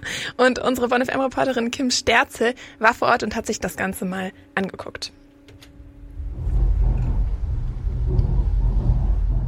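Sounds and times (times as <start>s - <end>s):
speech: 0.3s - 5.2s
trains rumbling overhead heard inside tunnel at Rolandseck station: 6.2s - 9.4s.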